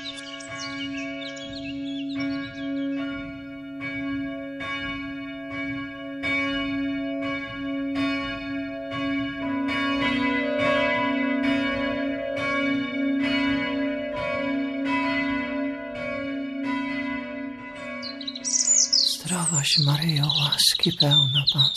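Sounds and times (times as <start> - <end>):
birds chirping faintly: 0.0 - 3.4, 18.0 - 21.7
church bells ringing for the Angelus: 0.0 - 21.7
speech: 19.7 - 21.7.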